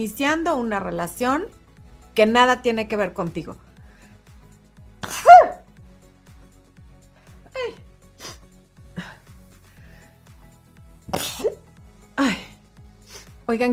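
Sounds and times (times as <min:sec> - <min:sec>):
speech: 0:00.0 - 0:01.6, 0:02.2 - 0:03.7, 0:13.5 - 0:13.7
loud sneeze during a live broadcast: 0:05.0 - 0:05.6, 0:11.1 - 0:11.6.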